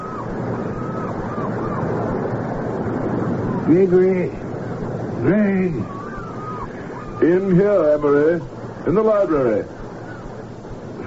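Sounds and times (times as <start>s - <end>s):
ocean surf waves breaking: 0.0s - 11.0s
speech: 3.7s - 4.4s, 5.2s - 6.0s, 7.2s - 9.8s.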